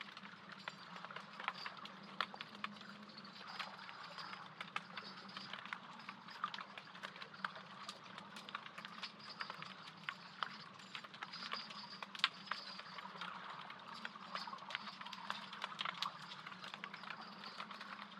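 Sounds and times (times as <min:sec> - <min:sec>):
underwater crackling and snapping clicks in a harbor: 0:00.0 - 0:18.1.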